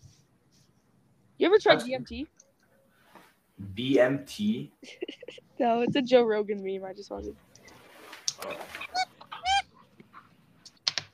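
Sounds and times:
speech: 1.4s - 2.4s, 3.8s - 7.5s, 8.4s - 8.8s
duck squeaking: 8.4s - 10.3s.

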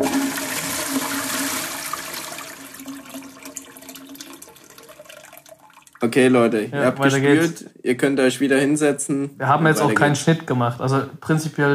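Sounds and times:
toilet flushing in a bathroom: 0.0s - 6.1s
toilet tank refilling trickle: 0.0s - 6.1s
speech: 6.0s - 11.7s.

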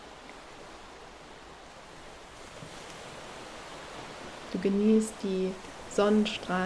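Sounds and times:
gentle ocean waves rolling in: 0.0s - 6.6s
speech: 4.6s - 6.6s.

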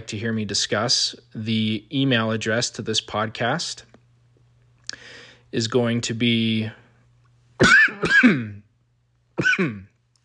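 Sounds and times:
speech: 0.0s - 3.9s, 5.0s - 6.8s, 7.6s - 8.6s, 9.4s - 9.9s
person clearing throat with raspy coughs: 7.6s - 8.7s, 9.4s - 10.0s.

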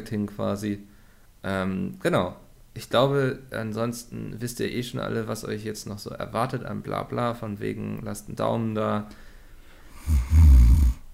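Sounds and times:
speech: 0.0s - 9.3s, 10.0s - 10.6s
loud low rumbling snore played from a soundboard: 9.9s - 11.1s.

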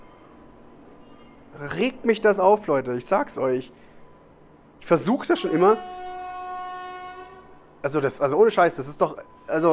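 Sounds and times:
speech: 1.5s - 3.9s, 4.9s - 6.0s, 7.8s - 9.7s
loud horn blast: 5.3s - 7.7s.

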